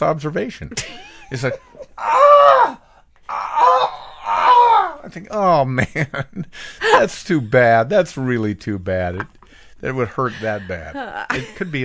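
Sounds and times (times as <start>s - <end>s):
speech: 0.0s - 2.8s, 5.0s - 11.8s
person imitating a groan from someone in a toilet stall: 2.0s - 5.0s.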